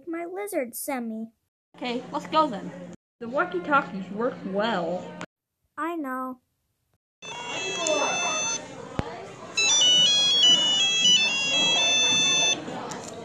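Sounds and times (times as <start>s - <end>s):
speech: 0.1s - 5.2s, 5.8s - 6.4s
phone electronic ringtone with bright stepping melody: 7.2s - 8.6s, 9.6s - 12.6s.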